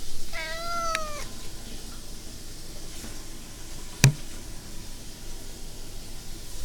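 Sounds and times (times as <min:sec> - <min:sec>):
steady hiss: 0:00.0 - 0:06.6
cat meowing: 0:00.2 - 0:01.6
sharp tap: 0:04.0 - 0:04.2.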